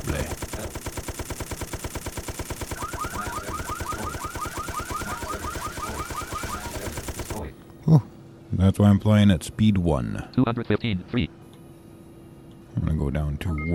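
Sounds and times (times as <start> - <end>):
machine gun fire in a video game: 0.0 - 7.5
warbling electronic tone: 2.8 - 7.0
speech: 7.9 - 8.1, 8.7 - 11.4, 13.0 - 13.7.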